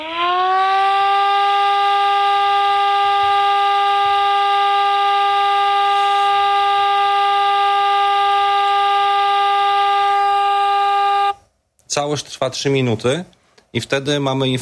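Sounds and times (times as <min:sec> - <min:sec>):
civil defense siren sounding continuous all-clear tone: 0:00.0 - 0:11.4
speech: 0:12.0 - 0:14.6.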